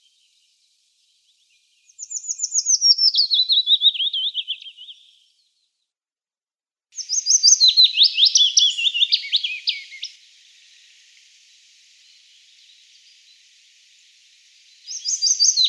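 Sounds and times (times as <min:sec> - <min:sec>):
willow warbler song: 0:01.4 - 0:05.6, 0:07.0 - 0:15.6.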